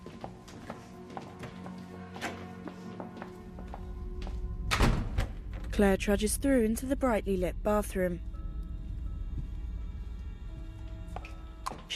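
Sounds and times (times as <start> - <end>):
soft footsteps of a woman crossing a room: 0.0 - 4.6, 9.2 - 11.9
low hum: 3.4 - 11.8
speech: 5.8 - 8.3.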